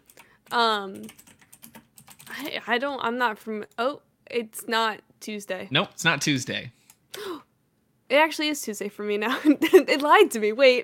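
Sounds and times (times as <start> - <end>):
typing on a computer keyboard: 0.0 - 2.4
speech: 0.5 - 1.3, 2.4 - 7.3, 8.1 - 10.8.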